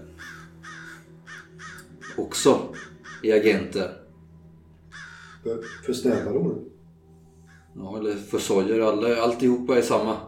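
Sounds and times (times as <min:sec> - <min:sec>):
crow cawing harshly: 0:00.1 - 0:03.8, 0:04.8 - 0:06.7, 0:07.4 - 0:07.8
speech: 0:02.2 - 0:04.0, 0:05.4 - 0:06.7, 0:07.8 - 0:10.2.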